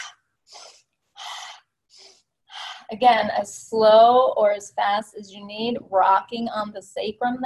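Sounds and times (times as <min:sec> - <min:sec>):
breathing in through the nose and out through the mouth during a yoga twist: 0:00.0 - 0:02.9
speech: 0:02.9 - 0:07.4.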